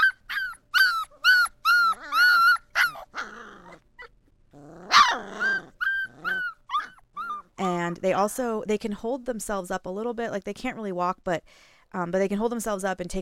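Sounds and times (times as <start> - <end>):
young puppies trying to howl: 0.0 - 3.8, 4.8 - 7.5
young puppies squeaking and whimpering: 0.0 - 7.6
speech: 7.9 - 13.2.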